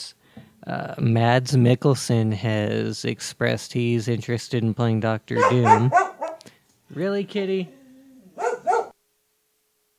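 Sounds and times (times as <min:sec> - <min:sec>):
speech: 0:00.7 - 0:06.1, 0:06.9 - 0:07.8
dog barking: 0:05.4 - 0:06.4, 0:08.4 - 0:09.0
dog whining: 0:05.4 - 0:06.4, 0:07.6 - 0:09.0.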